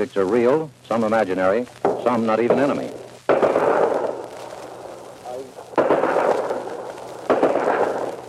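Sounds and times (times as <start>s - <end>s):
speech: 0.0s - 3.0s
artillery firing at night: 1.8s - 5.1s, 5.7s - 8.2s.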